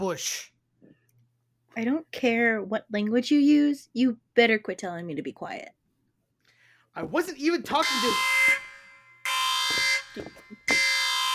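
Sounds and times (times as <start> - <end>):
speech: 0.0 - 0.5, 1.8 - 5.8, 7.0 - 8.6, 10.2 - 10.8
loud harsh electronic alarm blaring: 7.7 - 11.3.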